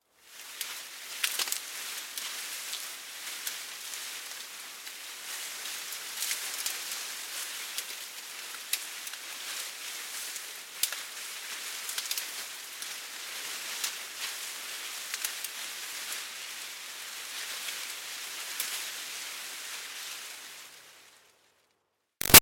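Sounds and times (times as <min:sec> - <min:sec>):
medium leaves rustling in wind: 0:00.2 - 0:21.4
medium leaves snapping: 0:00.4 - 0:05.5, 0:06.1 - 0:12.9.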